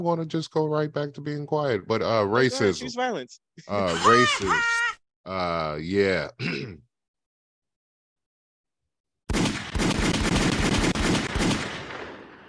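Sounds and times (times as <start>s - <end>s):
speech: 0.0s - 6.9s
laughter: 3.6s - 6.1s
rapid burst of gunshots outside like automatic fire: 9.3s - 12.4s.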